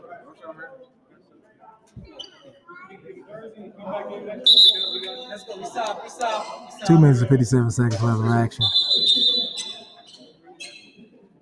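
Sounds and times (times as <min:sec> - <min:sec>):
talk: 0:00.0 - 0:11.4
speech: 0:00.4 - 0:02.2, 0:03.0 - 0:09.0
referee whistle blast: 0:04.5 - 0:05.4, 0:08.5 - 0:09.8
crowd murmuring: 0:06.8 - 0:09.6.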